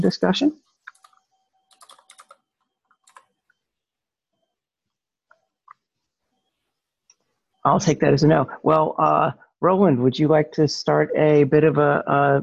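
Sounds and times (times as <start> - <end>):
speech: 0.0 - 0.6, 7.6 - 12.4
typing on a computer keyboard: 0.9 - 3.4.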